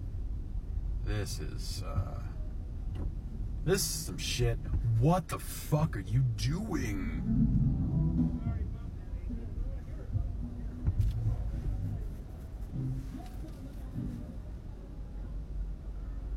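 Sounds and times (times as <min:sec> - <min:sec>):
paper shredding truck engine rumbling while maneuvering: 0:00.0 - 0:16.3
speech: 0:01.1 - 0:02.4, 0:03.0 - 0:07.6
brief voices: 0:03.7 - 0:16.3.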